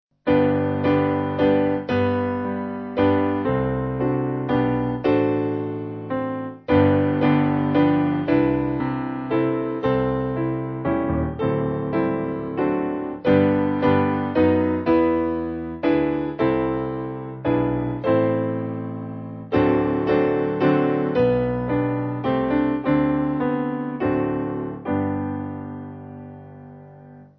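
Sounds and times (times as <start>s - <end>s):
piano: 0.1s - 27.3s.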